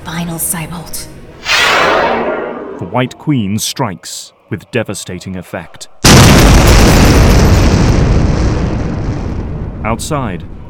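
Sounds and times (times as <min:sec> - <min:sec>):
speech: 0:00.2 - 0:01.2, 0:01.8 - 0:06.8, 0:09.8 - 0:10.6
building exploding in a huge blast, audio drama effect: 0:01.4 - 0:03.2, 0:06.0 - 0:10.6.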